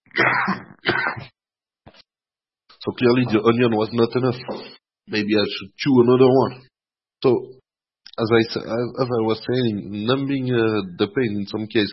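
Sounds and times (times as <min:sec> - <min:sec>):
person coughing: 0:00.1 - 0:01.3
speech: 0:00.4 - 0:01.3, 0:02.8 - 0:07.6, 0:08.2 - 0:11.9.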